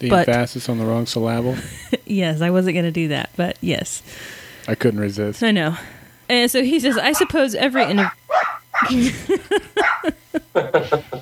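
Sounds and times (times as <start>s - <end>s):
speech: 0.0s - 8.2s, 8.8s - 11.2s
several schnauzers barking in overlapping bursts: 6.8s - 9.1s, 9.8s - 10.2s
laughter: 6.9s - 8.2s, 8.8s - 11.2s.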